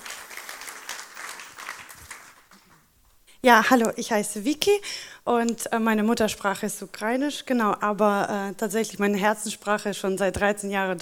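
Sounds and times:
audience clapping: 0:00.0 - 0:02.9
speech: 0:03.4 - 0:11.0.

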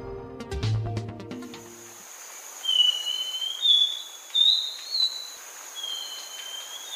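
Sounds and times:
thrush-like manakin calling with thin high whistled notes: 0:02.6 - 0:06.9.

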